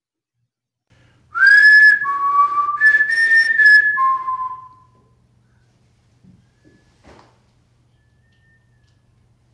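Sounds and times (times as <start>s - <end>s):
clear human-like whistle playing a short melodic phrase: 1.3s - 5.2s, 7.9s - 9.1s.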